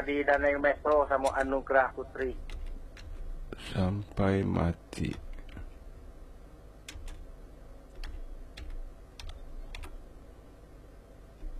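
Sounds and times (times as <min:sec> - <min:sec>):
speech: 0:00.0 - 0:02.6, 0:03.5 - 0:05.3
low hum: 0:00.0 - 0:11.5
typing on a computer keyboard at home: 0:02.4 - 0:03.2, 0:06.8 - 0:07.2, 0:07.9 - 0:10.0.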